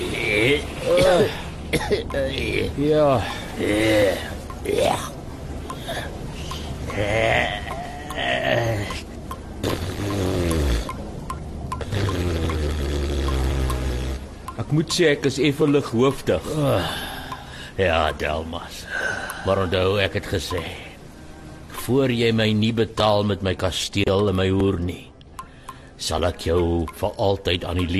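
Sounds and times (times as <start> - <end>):
speech: 0.0 - 5.1, 7.0 - 7.6, 14.6 - 17.1, 17.8 - 20.8, 21.9 - 25.1, 26.0 - 27.9
river water splashing as people surface: 0.0 - 23.0.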